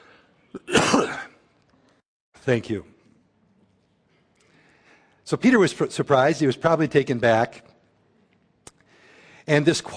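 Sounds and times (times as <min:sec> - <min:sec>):
harsh raspy cough: 0:00.5 - 0:01.4
speech: 0:02.4 - 0:02.9, 0:05.3 - 0:07.7, 0:09.5 - 0:09.9.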